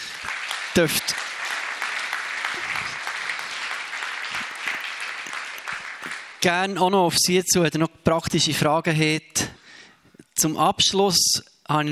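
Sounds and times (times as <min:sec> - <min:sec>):
audience clapping: 0:00.0 - 0:06.7
speech: 0:00.8 - 0:01.3, 0:06.4 - 0:09.5, 0:10.4 - 0:11.9.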